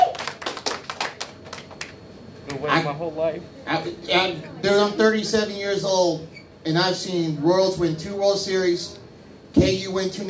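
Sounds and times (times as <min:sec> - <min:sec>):
hand clapping: 0:00.0 - 0:02.0
speech: 0:02.6 - 0:10.2.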